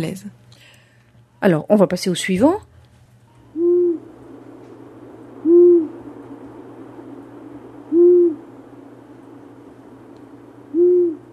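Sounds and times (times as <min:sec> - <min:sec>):
speech: 0:00.0 - 0:00.4, 0:01.4 - 0:02.7
low hum: 0:00.0 - 0:11.3
long-eared owl hooting: 0:03.4 - 0:04.4, 0:05.1 - 0:08.7, 0:10.4 - 0:11.3.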